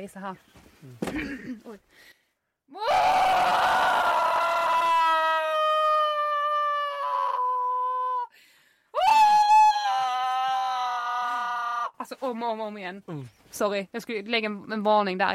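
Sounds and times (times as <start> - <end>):
speech: 0.0 - 4.1, 12.0 - 15.3
person imitating a wailing scream: 2.7 - 8.3, 9.0 - 12.0.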